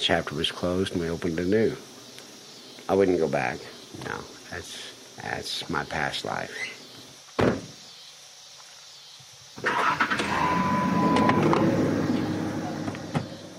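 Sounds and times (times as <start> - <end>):
speech: 0.0 - 2.0, 2.9 - 6.8
single thump: 7.4 - 7.8
car driving away: 9.6 - 13.5.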